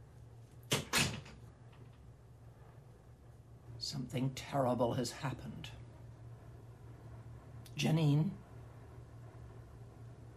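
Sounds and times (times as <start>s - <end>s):
faint low hum: 0.0s - 10.3s
door swinging shut: 0.7s - 1.4s
speech: 3.8s - 5.8s, 7.8s - 8.4s.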